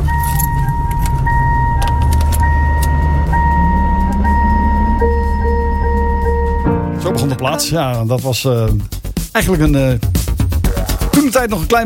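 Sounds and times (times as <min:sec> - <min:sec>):
low engine-like rumble: 0:00.0 - 0:06.7
car electronic chime recorded from the singer's own car: 0:00.0 - 0:07.8
speech: 0:07.4 - 0:10.3, 0:11.2 - 0:11.8.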